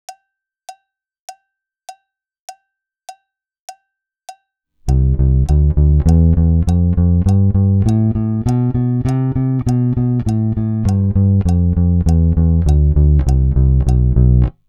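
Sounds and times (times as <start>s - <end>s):
fingerstyle practice phrase: 4.9s - 14.6s.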